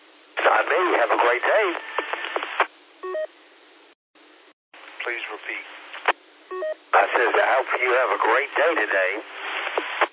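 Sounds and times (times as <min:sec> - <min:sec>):
narrow band-limited radio talk: 0:00.4 - 0:02.7, 0:04.9 - 0:06.2, 0:06.9 - 0:10.1
speech: 0:00.6 - 0:02.2, 0:05.1 - 0:05.8, 0:07.0 - 0:09.4
radio roger beep at end of a transmission: 0:06.5 - 0:07.2.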